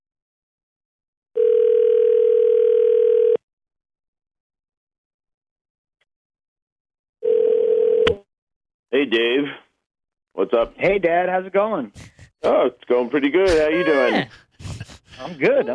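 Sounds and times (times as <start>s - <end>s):
steady clean telephone line tone: 1.4s - 3.4s, 7.2s - 8.1s
speech: 9.0s - 9.6s, 10.4s - 14.5s, 15.2s - 15.7s.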